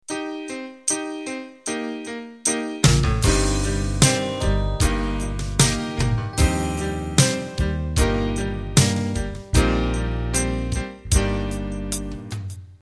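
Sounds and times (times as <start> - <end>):
pop music intro: 2.5 - 12.5.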